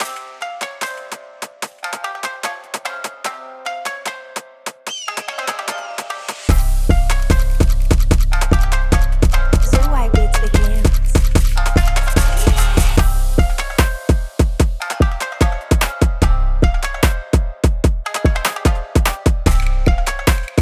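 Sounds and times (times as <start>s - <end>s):
jersey drill beat in C minor: 6.5s - 20.5s.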